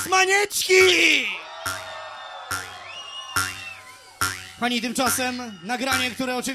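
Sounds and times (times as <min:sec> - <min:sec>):
speech: 0:00.1 - 0:01.8, 0:04.6 - 0:06.5
club crowd roaring and cheering: 0:00.1 - 0:06.5
whoops and sustained high shouts: 0:00.8 - 0:04.2.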